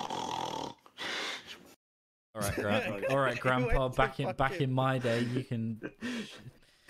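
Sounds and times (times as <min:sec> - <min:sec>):
person imitating snoring: 0:00.0 - 0:00.9
laughter: 0:02.4 - 0:06.6
speech: 0:02.4 - 0:06.6.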